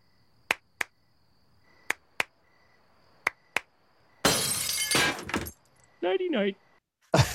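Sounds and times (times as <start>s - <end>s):
crickets chirping: 0.0s - 7.3s
sharp claps: 0.5s - 1.0s, 1.9s - 2.3s, 3.2s - 3.7s
window glass shattering as a lamp flies out: 4.2s - 5.6s
speech: 6.0s - 6.6s.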